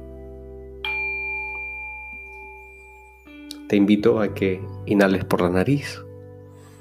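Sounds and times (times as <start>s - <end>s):
soft steady musical drone: 0.0s - 6.7s
bell being struck: 0.8s - 4.1s
speech: 3.7s - 6.1s.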